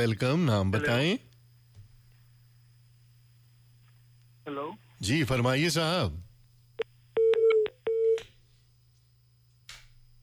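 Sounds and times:
speech: 0:00.0 - 0:01.3, 0:04.6 - 0:06.3
phone line tone after call disconnects: 0:07.2 - 0:08.2.

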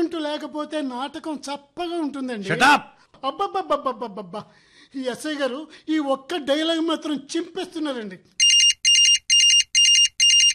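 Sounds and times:
speech: 0:00.2 - 0:08.4
phone ringing with bright warbling electronic trill: 0:08.4 - 0:10.5.

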